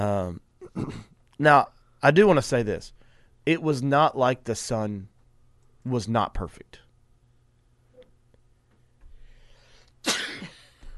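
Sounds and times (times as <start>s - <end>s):
speech: 0.0s - 5.1s, 5.8s - 6.8s
person sneezing: 0.6s - 1.1s, 10.0s - 10.6s
quiet inhale: 3.0s - 3.4s, 9.0s - 10.0s.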